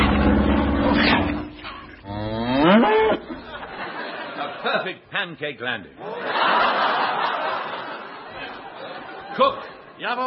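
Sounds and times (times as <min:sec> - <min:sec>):
herd of cows on a runway mooing: 0:00.0 - 0:03.7
laughter: 0:03.2 - 0:05.0, 0:06.0 - 0:10.2
speech: 0:04.8 - 0:07.1, 0:09.4 - 0:10.2.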